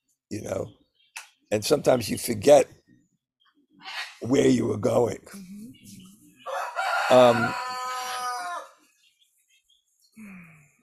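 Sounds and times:
softer bird sounds: 0.0s - 10.8s
speech: 0.3s - 0.8s, 1.5s - 2.8s, 3.8s - 5.5s, 7.1s - 7.6s
rooster crowing: 6.4s - 8.8s.

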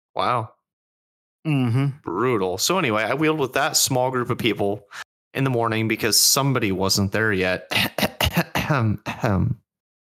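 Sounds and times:
speech: 0.2s - 0.6s, 1.4s - 8.1s, 8.7s - 9.6s
person clearing throat: 7.7s - 9.6s.

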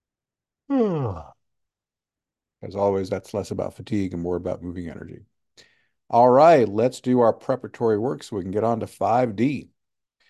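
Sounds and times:
speech: 0.7s - 1.3s, 2.6s - 9.7s
person yawning: 0.7s - 1.4s.

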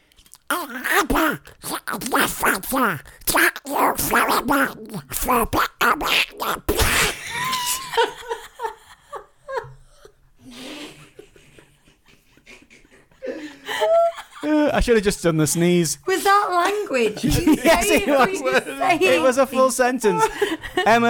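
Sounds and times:
person imitating a cartoon duck voice with squawky babble: 0.4s - 7.1s
speech: 0.6s - 7.2s, 14.7s - 21.0s
laughter: 6.9s - 14.7s, 16.5s - 19.1s, 20.1s - 21.0s.

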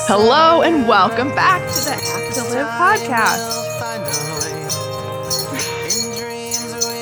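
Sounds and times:
speech: 0.1s - 3.6s
bells jingling: 1.5s - 6.9s.

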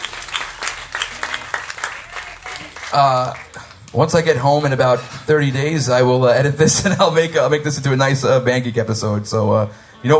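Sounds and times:
crowd applauding: 0.0s - 4.9s
speech: 2.9s - 10.1s.

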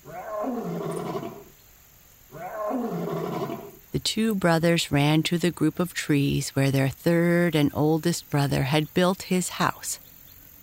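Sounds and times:
lion roaring: 0.0s - 1.5s, 2.3s - 3.8s
speech: 4.0s - 10.0s.

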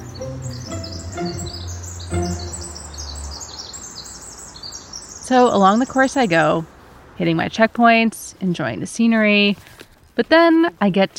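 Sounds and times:
birds chirping and trilling outdoors: 0.0s - 6.5s
speech: 5.3s - 11.1s.

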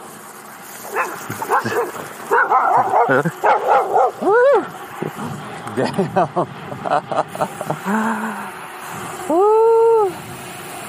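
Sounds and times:
large beefy dog barking and yelping off its chain: 0.9s - 4.2s
speech: 1.0s - 8.5s, 9.3s - 9.5s
laughter: 2.8s - 3.4s, 4.2s - 8.4s.

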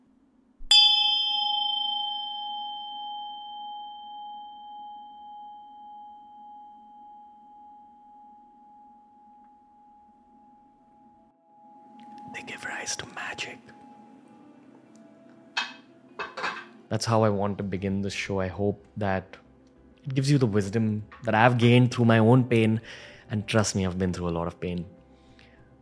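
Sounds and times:
Tibetan Buddhist ritual bell ringing: 0.7s - 7.9s
speech: 12.4s - 13.8s, 16.9s - 19.4s, 20.0s - 25.0s.

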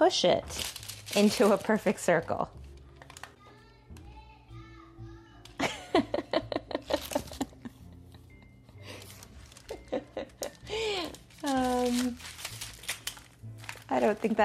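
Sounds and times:
speech: 0.0s - 2.6s, 14.0s - 14.4s
paper crinkling while shaped around a log of dough: 0.4s - 3.4s, 6.8s - 7.8s, 8.8s - 14.4s
laughter: 5.6s - 8.7s, 9.7s - 11.0s.

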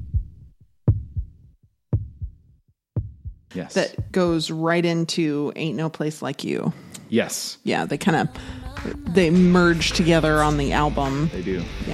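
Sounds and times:
heartbeat-like deep soft double thumps ending a song: 0.0s - 4.6s, 8.2s - 11.9s
speech: 3.5s - 11.9s.

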